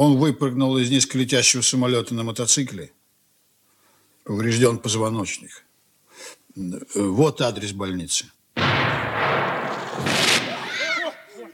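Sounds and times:
speech: 0.0s - 3.0s, 4.2s - 8.8s
gunshots: 8.6s - 11.0s.

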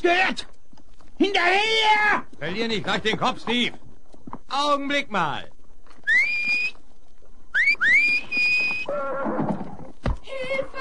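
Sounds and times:
speech: 0.0s - 0.5s, 1.2s - 3.8s, 4.5s - 5.6s
horse whinnying: 6.0s - 6.8s, 7.5s - 10.0s
rising high-pitched whistles used as a trick to make a horse rear: 6.0s - 6.8s, 7.5s - 8.9s.

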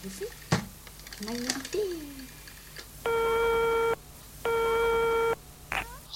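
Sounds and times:
speech: 0.0s - 0.4s, 1.2s - 2.4s
telephone ringback tone while a call is placed: 3.1s - 5.4s.

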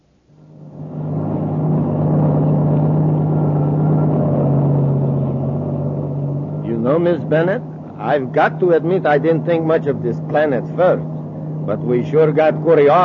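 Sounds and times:
heavy truck engine droning on a highway: 0.0s - 13.0s
speech: 7.0s - 11.1s, 11.7s - 13.0s.

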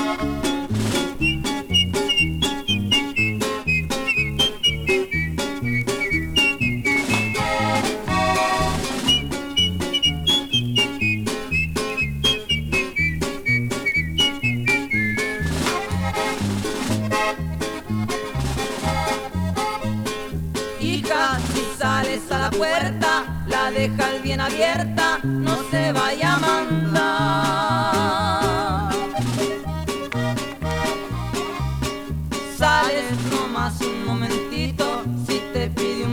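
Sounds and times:
person whistling a melody: 0.0s - 16.5s, 25.5s - 30.3s
band accompaniment in a Mexican song: 0.0s - 36.1s.

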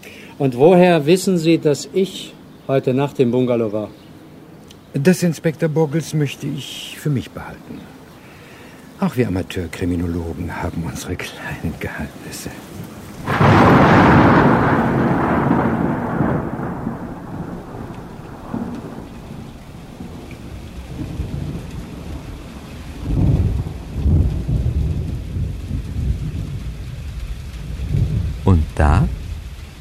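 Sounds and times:
speech: 0.4s - 4.0s, 4.9s - 8.0s, 9.0s - 12.9s
heavy rain as the rainy season breaks: 6.0s - 29.7s
rolling thunder as the rainy season breaks: 12.8s - 29.7s.

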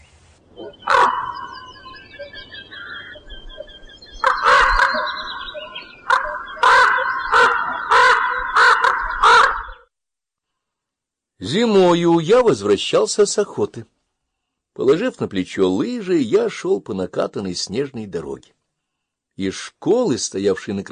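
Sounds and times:
crows cawing: 0.6s - 3.3s, 4.2s - 9.8s
speech: 11.4s - 13.9s, 14.8s - 18.6s, 19.4s - 20.9s.

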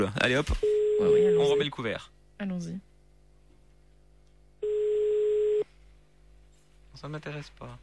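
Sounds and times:
speech: 0.0s - 2.9s, 7.0s - 7.8s
phone line ringing tone as a call is placed: 0.6s - 1.7s, 4.6s - 5.6s.

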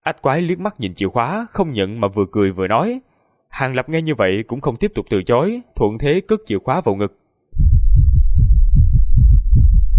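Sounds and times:
speech: 0.0s - 7.2s
rapid heartbeat sound effect: 7.6s - 9.9s.

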